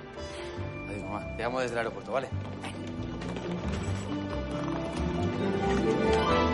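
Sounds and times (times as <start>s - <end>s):
speech: 1.1s - 2.8s
running footsteps in high heels: 1.5s - 6.5s.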